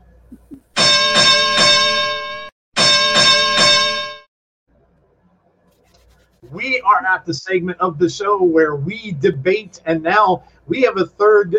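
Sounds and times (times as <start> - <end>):
bell ringing: 0.8 - 4.3
speech: 6.5 - 11.5.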